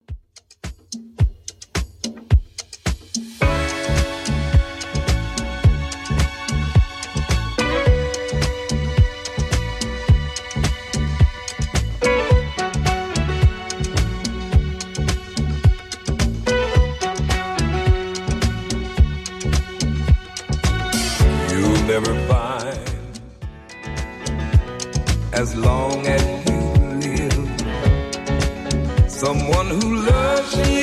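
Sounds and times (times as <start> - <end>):
drum machine beat in 70s style at 108 bpm: 0.0 - 30.8.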